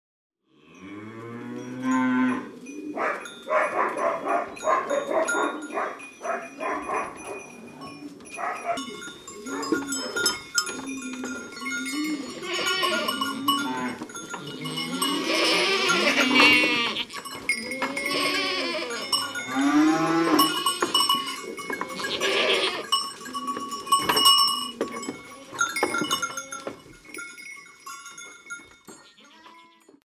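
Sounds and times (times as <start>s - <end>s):
animals going out in Ardèche: 3.1s - 26.9s.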